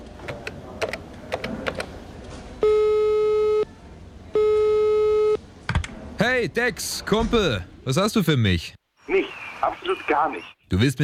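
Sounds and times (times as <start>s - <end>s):
long steady buzzy telephone call tones: 2.6s - 3.7s, 4.3s - 5.4s
speech: 6.4s - 11.0s.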